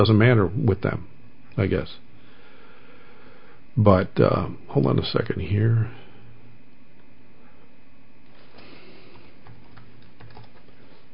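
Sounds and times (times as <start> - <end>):
speech: 0.0 - 2.0, 3.8 - 6.0
low steady hum: 0.0 - 11.1
quiet typing on a computer keyboard: 9.4 - 10.8.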